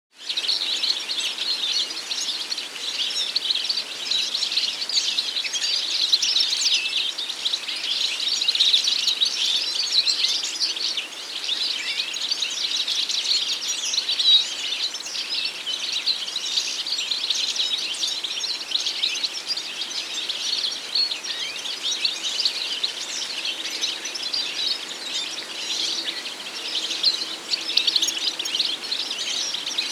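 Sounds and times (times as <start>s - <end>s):
goldfinch: 0.2s - 29.9s.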